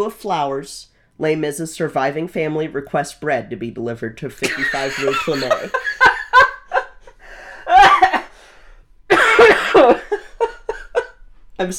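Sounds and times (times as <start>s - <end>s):
speech: 0.0s - 6.1s, 11.6s - 11.7s
person coughing: 4.4s - 5.8s, 7.7s - 8.3s, 9.1s - 11.1s.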